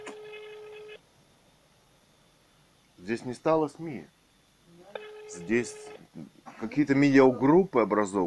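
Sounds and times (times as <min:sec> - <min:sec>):
electronic telephone ringback tone over a phone line: 0:00.0 - 0:01.0, 0:04.9 - 0:06.0
phone line hiss: 0:00.0 - 0:01.0, 0:04.8 - 0:08.2
speech: 0:03.1 - 0:04.2, 0:05.3 - 0:08.2.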